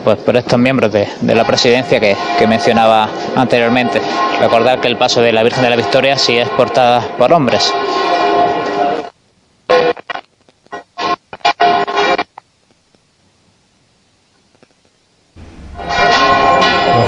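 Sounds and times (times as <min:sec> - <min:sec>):
speech: 0:00.0 - 0:08.0
church bells pealing: 0:00.7 - 0:09.1, 0:11.0 - 0:12.2, 0:15.4 - 0:17.0.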